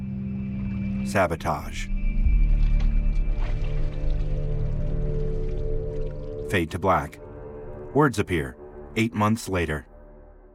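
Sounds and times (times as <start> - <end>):
steady low hum: 0.0 - 9.0
soft drips and splashes of water: 0.4 - 7.9
speech: 1.0 - 1.9, 6.5 - 7.2, 7.9 - 9.9
hands rinsing in a white plastic pail of water: 2.2 - 7.2.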